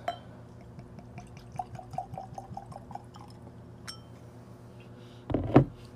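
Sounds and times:
liquor poured into a glass: 0:01.2 - 0:03.5.

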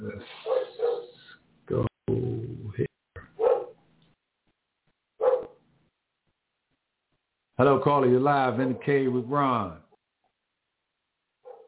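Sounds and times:
dog barking outside: 0:00.3 - 0:01.2, 0:03.3 - 0:03.8, 0:05.2 - 0:05.6, 0:11.4 - 0:11.6
speech: 0:07.6 - 0:09.8.

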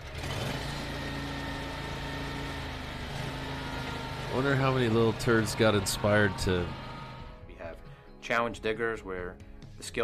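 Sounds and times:
large 4500 lawn tractor engine running while driving around: 0:00.0 - 0:07.4
speech: 0:04.4 - 0:06.8, 0:08.3 - 0:10.0.

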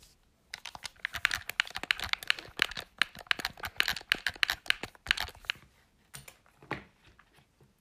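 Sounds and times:
plastic game controller buttons being pressed: 0:00.6 - 0:05.6.

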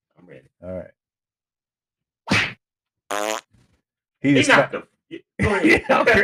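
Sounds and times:
speech: 0:00.4 - 0:01.0, 0:04.2 - 0:06.2
hard slap: 0:02.3 - 0:02.6
short buzzy fart: 0:02.3 - 0:03.5
people laughing: 0:05.4 - 0:06.2.

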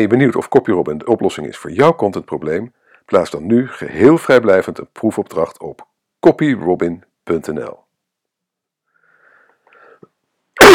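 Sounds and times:
speech: 0:00.0 - 0:07.8
faint wheezy breathing: 0:08.9 - 0:10.1.

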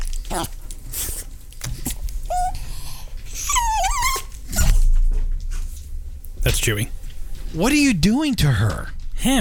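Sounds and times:
noise: 0:00.0 - 0:09.3
speech: 0:00.3 - 0:00.6, 0:06.6 - 0:09.3
male dog squealing and whimpering: 0:02.3 - 0:02.7, 0:03.3 - 0:04.9.

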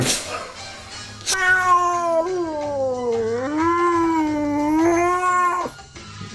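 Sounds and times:
frightened angry cat yowling in distress: 0:01.3 - 0:05.8.

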